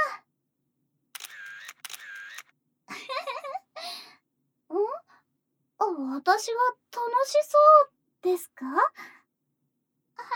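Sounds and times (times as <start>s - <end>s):
camera shutter clicking during a photo shoot: 1.2s - 2.5s
speech: 6.2s - 9.1s.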